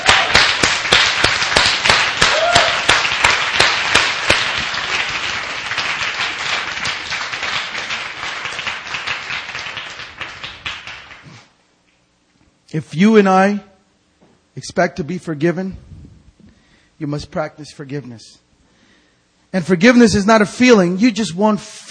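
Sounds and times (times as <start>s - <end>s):
audience clapping: 0.0s - 11.6s
speech: 12.8s - 13.7s, 14.6s - 15.9s, 17.0s - 18.4s, 19.5s - 21.9s.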